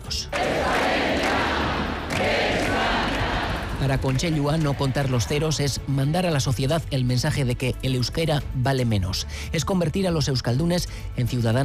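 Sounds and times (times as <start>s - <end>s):
large crowd of protesters applauding and cheering: 0.3s - 6.0s
speech: 3.8s - 11.6s.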